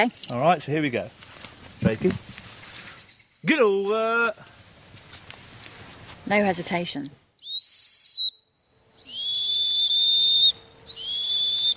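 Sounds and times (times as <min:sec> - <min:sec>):
speech: 0:00.0 - 0:01.2, 0:01.8 - 0:02.4, 0:03.4 - 0:04.5, 0:06.3 - 0:07.2
dog training hunt whistle blasts with trilling warble: 0:07.4 - 0:08.4, 0:09.0 - 0:11.7.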